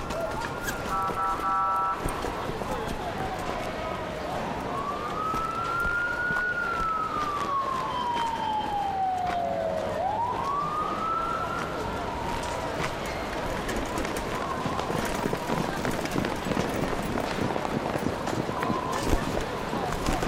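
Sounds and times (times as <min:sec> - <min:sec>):
ambulance siren wailing: 0:00.0 - 0:02.2, 0:03.3 - 0:16.2
busy noisy background: 0:00.0 - 0:20.2.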